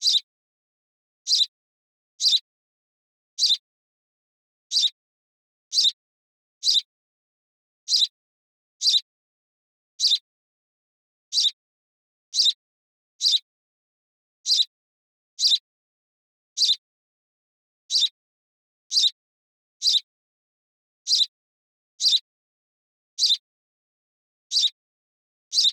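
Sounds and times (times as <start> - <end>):
house sparrow: 0.0 - 0.3, 1.2 - 1.5, 2.2 - 2.5, 3.4 - 3.6, 4.7 - 5.0, 5.7 - 6.0, 6.6 - 6.9, 7.8 - 8.2, 8.8 - 9.1, 9.9 - 10.3, 11.3 - 11.6, 12.3 - 12.6, 13.2 - 13.5, 14.4 - 14.7, 15.4 - 15.6, 16.6 - 16.8, 17.9 - 18.2, 18.9 - 19.2, 19.8 - 20.1, 21.0 - 21.3, 22.0 - 22.3, 23.2 - 23.4, 24.5 - 24.8, 25.5 - 25.7.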